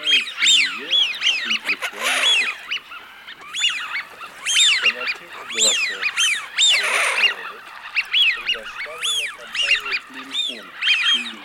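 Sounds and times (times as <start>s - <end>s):
Eurasian wigeon low grating calls: 0.0s - 11.4s
Eurasian wigeon whistles in Russia: 0.0s - 11.4s.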